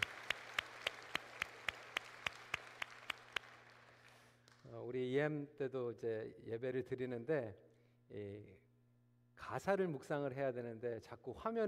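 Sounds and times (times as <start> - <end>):
church audience clapping at a worship service: 0.0 - 4.7
faint hum: 0.0 - 11.6
speech: 4.6 - 8.6, 9.4 - 11.6.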